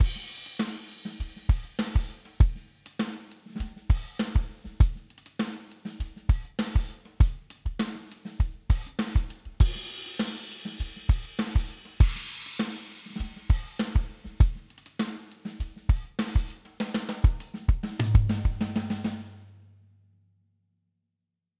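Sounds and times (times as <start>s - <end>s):
drum: 0.0s - 19.4s.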